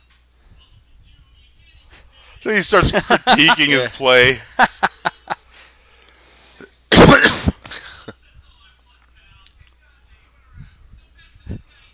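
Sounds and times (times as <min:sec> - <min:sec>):
breathing: 0:02.1 - 0:02.4, 0:05.4 - 0:06.8
speech: 0:02.4 - 0:04.8
laughter: 0:02.5 - 0:05.5
harsh raspy coughing fit: 0:06.9 - 0:08.2.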